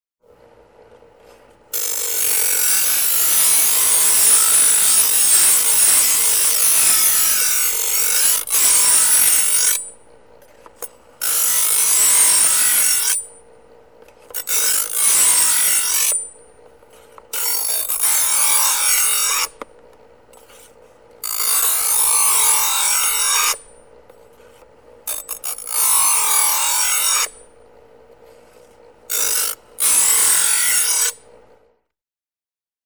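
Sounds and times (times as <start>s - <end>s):
electric grinding wheel: 1.8s - 9.9s, 10.7s - 13.4s, 14.3s - 16.4s, 17.2s - 19.7s, 20.4s - 23.8s, 25.1s - 27.5s, 29.1s - 31.3s.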